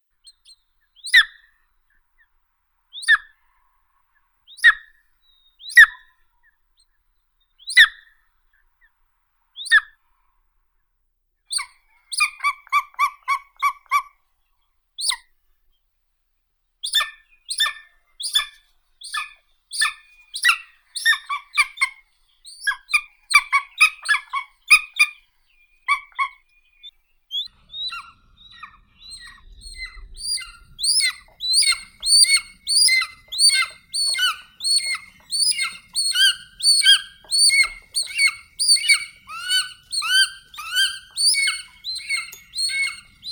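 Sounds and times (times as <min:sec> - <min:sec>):
golden eagle Aquila chrysaetos calling: 0:00.3 - 0:01.5, 0:02.9 - 0:03.5, 0:04.5 - 0:06.1, 0:07.4 - 0:08.1, 0:11.5 - 0:14.1, 0:16.9 - 0:43.3.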